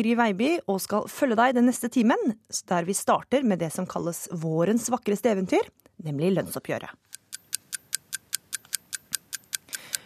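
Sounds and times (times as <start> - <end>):
speech: 0.0 - 7.1
clock ticking: 7.1 - 10.0.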